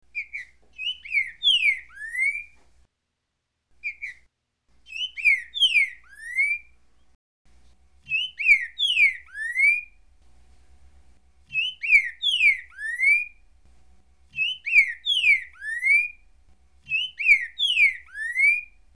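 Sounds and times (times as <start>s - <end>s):
Trinca Ferro singing: 0.1s - 2.6s, 3.8s - 6.8s, 8.1s - 10.0s, 11.5s - 13.4s, 14.3s - 16.2s, 16.8s - 18.8s.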